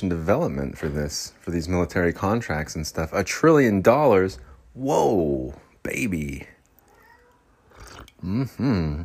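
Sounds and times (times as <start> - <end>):
speech: 0.0 - 6.5, 8.2 - 9.0
cat meowing: 6.8 - 7.8.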